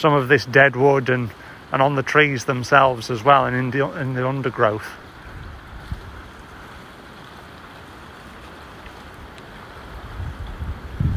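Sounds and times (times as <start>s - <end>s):
speech: 0.0s - 5.0s
blustery autumn wind at a woodland dam: 0.0s - 11.1s
wind buffeting the microphone: 5.0s - 7.0s, 8.2s - 11.1s.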